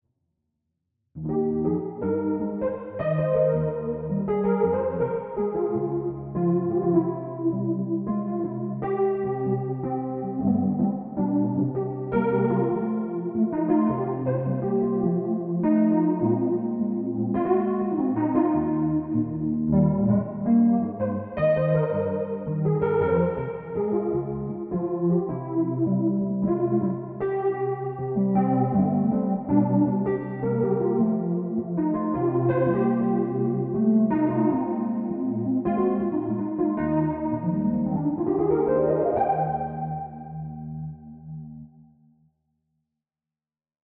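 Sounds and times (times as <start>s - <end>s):
Wurli electric piano: 1.2s - 41.9s.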